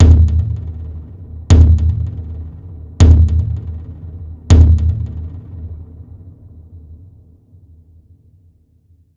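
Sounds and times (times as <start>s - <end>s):
drum sequence: 0.0s - 5.7s.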